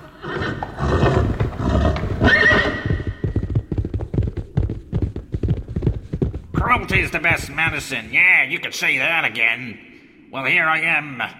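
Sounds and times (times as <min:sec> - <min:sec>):
horse neighing: 0:00.0 - 0:03.7
horse hooves clip-clopping: 0:00.5 - 0:08.1
speech: 0:06.9 - 0:11.3.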